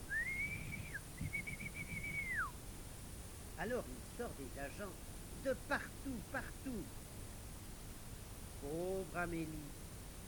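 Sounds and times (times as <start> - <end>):
low hum: 0.0 - 10.2
night guard blowing a whistle: 0.1 - 2.6
speech: 3.6 - 7.0, 8.6 - 9.8.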